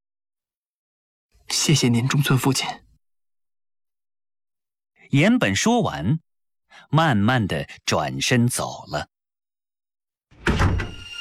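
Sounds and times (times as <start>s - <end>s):
speech: 1.5s - 2.9s, 5.1s - 9.1s
door closing: 10.3s - 11.1s.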